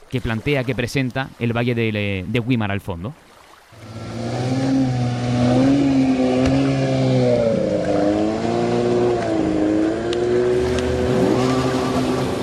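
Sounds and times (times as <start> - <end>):
speech: 0.1 - 3.9
motorboat or jet ski engine revving off a breakwater: 3.7 - 12.4.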